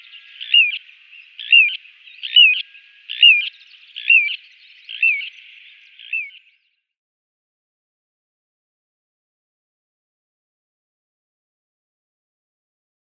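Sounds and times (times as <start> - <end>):
little ringed plover giving short high falling whistled calls: 0.0 - 6.6.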